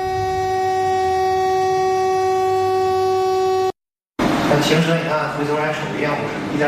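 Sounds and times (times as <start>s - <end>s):
train horn blast during emergency braking: 0.0s - 3.7s
speech: 4.7s - 6.6s.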